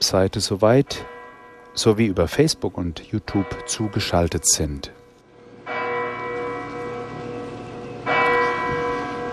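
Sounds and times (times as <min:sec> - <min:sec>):
large sanctuary church bell tolling: 0:00.0 - 0:09.3
speech: 0:00.1 - 0:01.2, 0:01.8 - 0:05.0.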